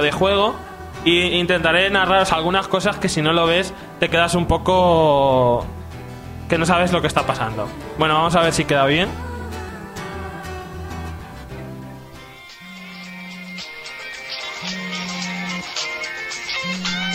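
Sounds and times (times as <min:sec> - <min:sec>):
speech: 0:00.0 - 0:05.8, 0:06.5 - 0:09.2
mobile phone ringing with bright melodic electronic ringtone: 0:12.2 - 0:17.1.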